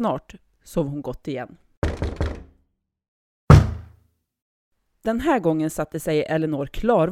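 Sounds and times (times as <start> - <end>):
speech: 0.0 - 2.2, 5.0 - 7.0
quick dull knocks: 1.8 - 2.5, 3.5 - 3.9
heavy thud with a short resonant ring: 3.5 - 3.9.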